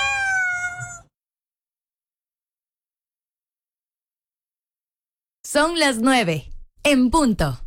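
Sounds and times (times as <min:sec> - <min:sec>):
cat meowing: 0:00.0 - 0:01.1
speech: 0:05.4 - 0:07.6.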